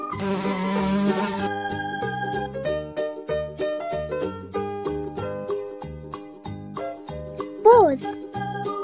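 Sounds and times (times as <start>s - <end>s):
bouncy plinking children's tune: 0.0s - 8.8s
bee-like buzzing drone: 0.2s - 1.5s.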